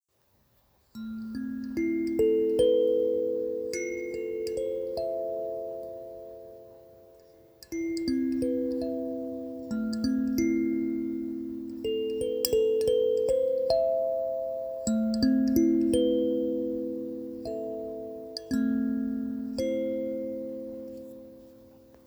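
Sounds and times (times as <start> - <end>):
Hokema kalimba playing in A minor: 1.3 - 22.0.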